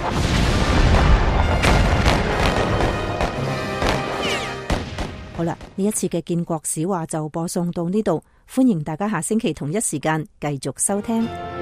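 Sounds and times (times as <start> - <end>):
cannon fire from Confederate gunboats around a harbor: 0.0 - 5.4
continuous battle rumble: 0.0 - 5.8
speech: 5.4 - 11.6.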